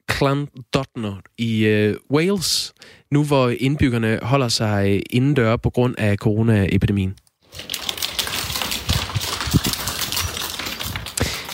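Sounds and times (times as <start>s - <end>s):
speech: 0.2s - 7.8s
wild mountain goat hooves clicking and clattering on hard town street pavement: 7.5s - 11.5s.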